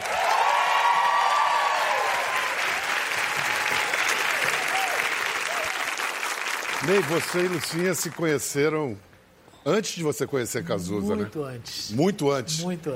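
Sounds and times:
audience cheers: 0.0s - 6.0s
audience applause: 0.0s - 8.4s
speech: 6.8s - 12.9s.

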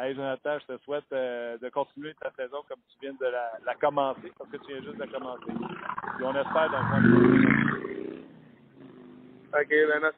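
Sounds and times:
speech: 0.0s - 8.4s, 9.5s - 10.1s
motorcycle with loud rumbling engine roaring past: 5.6s - 9.5s.

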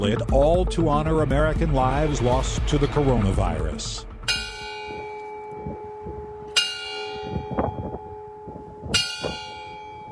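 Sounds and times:
speech: 0.0s - 4.1s
memorial bells in Utah tolling for those who died from COVID: 2.1s - 10.1s.

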